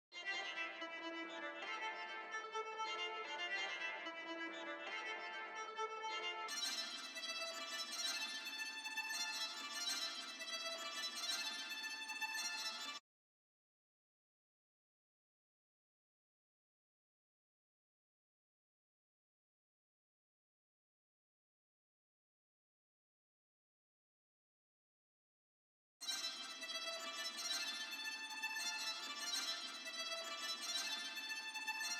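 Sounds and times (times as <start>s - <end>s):
tremolo violin in D minor: 0.2s - 13.0s, 26.0s - 31.9s.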